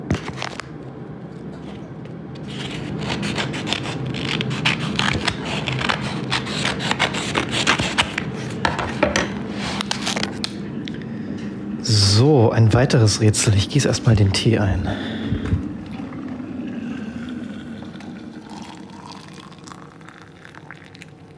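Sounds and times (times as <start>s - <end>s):
faint hum: 0.0s - 21.3s
paper page of an escape room puzzle game being cut open: 0.1s - 0.7s, 2.4s - 9.0s, 9.6s - 10.6s
speech: 12.4s - 15.5s.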